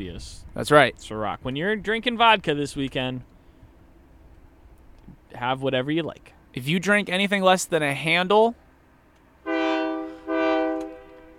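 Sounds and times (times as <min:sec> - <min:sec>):
speech: 0:00.0 - 0:03.3, 0:05.4 - 0:08.6
faint rumble: 0:00.0 - 0:09.5
train horn blasts: 0:09.4 - 0:11.3.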